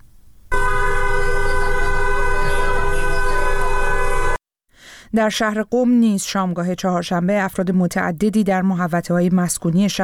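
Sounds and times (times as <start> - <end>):
continuous car horns honking in street: 0.5 - 4.4
speech: 5.2 - 10.0.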